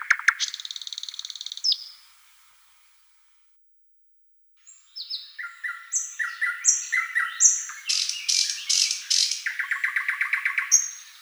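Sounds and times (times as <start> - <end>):
thrush nightingale singing: 0.0 - 2.1, 4.6 - 11.2.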